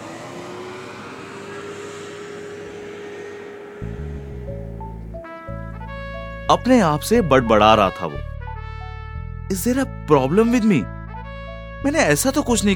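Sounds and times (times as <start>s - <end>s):
stepped buzzing harmonic tones: 0.0s - 6.5s
car engine starting: 0.0s - 6.6s
car driving with a low humming vehicle drone: 0.0s - 6.7s
speech: 6.5s - 8.3s, 9.5s - 11.0s, 11.8s - 12.7s.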